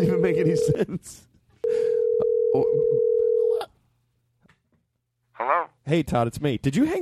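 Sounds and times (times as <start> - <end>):
speech: 0.2 - 1.8, 2.6 - 3.0, 5.4 - 7.0
telephone dial tone: 1.7 - 3.6.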